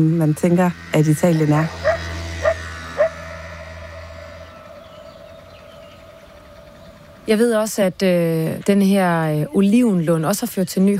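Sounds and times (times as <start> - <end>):
speech: 0.0 - 1.9, 7.3 - 10.9
steady low droning hum: 0.0 - 10.3
somewhat dog barks: 1.8 - 3.3.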